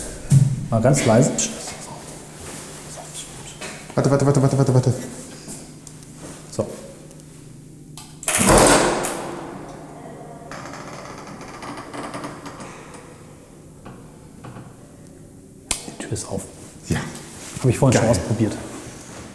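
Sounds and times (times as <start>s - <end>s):
speech: 0.7s - 1.6s, 4.0s - 5.2s, 17.7s - 18.7s
door creaks: 8.2s - 13.2s.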